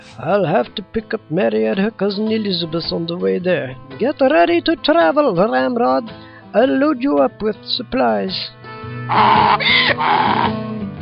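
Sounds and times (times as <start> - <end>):
speech: 0.2 - 10.7
loud donkey bray: 9.0 - 11.0.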